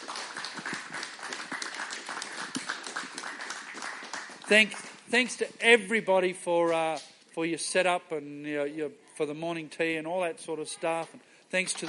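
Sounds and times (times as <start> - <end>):
crowd applauding: 0.0 - 5.0
speech: 4.5 - 11.8.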